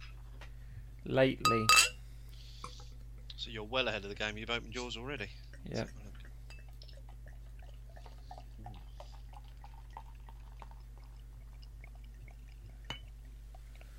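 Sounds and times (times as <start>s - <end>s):
steady low hum: 0.0s - 13.9s
speech: 1.1s - 1.9s, 3.5s - 6.1s
fizzy crackle of tiny popping beer bubbles: 5.4s - 13.9s
carbonated dark amber beer poured from a bottle: 6.8s - 13.7s.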